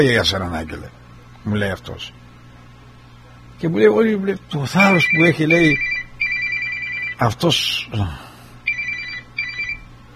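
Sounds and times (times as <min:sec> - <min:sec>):
speech: 0:00.0 - 0:02.2, 0:03.6 - 0:05.9, 0:07.2 - 0:08.3
telephone ringing with a warbling electronic trill: 0:04.8 - 0:07.2, 0:08.7 - 0:09.8.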